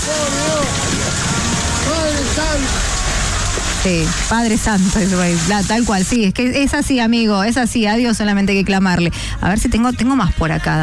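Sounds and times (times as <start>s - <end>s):
hail falling: 0.0s - 6.2s
speech: 3.8s - 10.8s.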